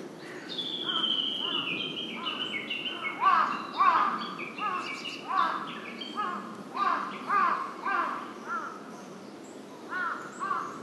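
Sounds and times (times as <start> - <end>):
background hiss: 0.0 - 10.8
Large-billed crow giving hoarse arched caws: 0.2 - 2.4, 3.1 - 5.6, 6.2 - 8.8, 9.9 - 10.8.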